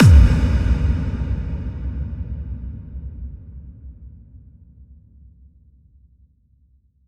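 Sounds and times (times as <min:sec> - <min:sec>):
kick drum: 0:00.0 - 0:01.8.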